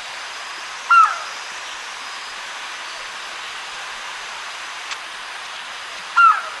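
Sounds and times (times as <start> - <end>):
pitta whistled bird calls: 0.9 - 1.3, 6.2 - 6.5.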